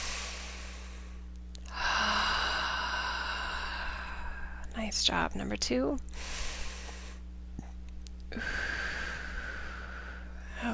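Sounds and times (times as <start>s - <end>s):
deep breathing in through the nose and out through the mouth: 0.0s - 4.7s, 6.1s - 7.3s, 8.3s - 10.7s
speech: 4.8s - 6.4s.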